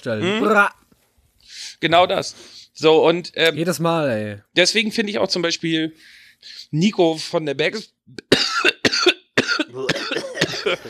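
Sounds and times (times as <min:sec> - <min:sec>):
speech: 0:00.0 - 0:00.8, 0:01.4 - 0:08.5, 0:10.7 - 0:10.8
harsh hacking coughing fit with raspy throat sounds: 0:08.2 - 0:10.8.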